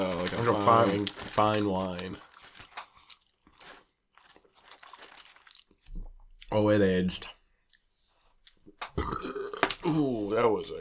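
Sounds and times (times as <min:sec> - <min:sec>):
speech: 0:00.3 - 0:02.3, 0:06.5 - 0:07.4, 0:09.0 - 0:10.7
bubbly gurgly burp after eating fries: 0:09.0 - 0:09.9.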